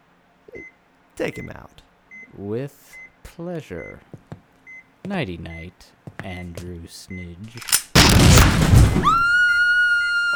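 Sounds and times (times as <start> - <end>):
speech: 1.2 - 4.2, 5.0 - 7.8, 9.0 - 9.4
loud booming blast for a gunshot to the head: 7.7 - 9.2.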